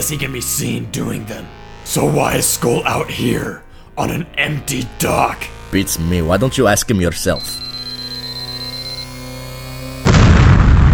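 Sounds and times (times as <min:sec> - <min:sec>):
speech: 0:00.0 - 0:07.7
steady low hum: 0:00.0 - 0:10.6
C4 explosive charge detonating inside a warehouse: 0:10.0 - 0:10.9.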